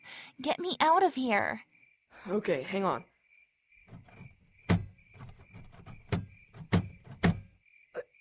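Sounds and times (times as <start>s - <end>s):
speech: 0.4s - 3.1s
heavy thumps and rattling bangs of a stuck door being shoved and yanked: 3.9s - 7.6s.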